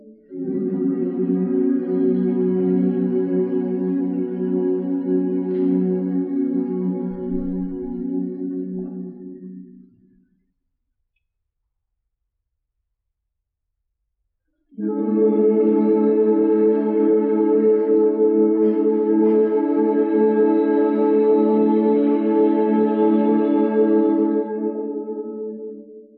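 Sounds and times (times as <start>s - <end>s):
sad eulogy voice choir loop: 0.2s - 9.7s, 14.8s - 25.8s.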